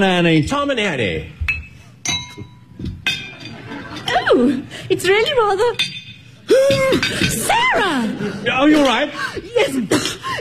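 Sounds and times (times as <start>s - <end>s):
speech: 0.0s - 1.4s, 4.3s - 5.9s, 6.5s - 10.3s
glasses clinking together in a toast: 1.4s - 4.4s, 5.6s - 7.5s
laughter: 3.3s - 4.8s, 6.7s - 10.3s.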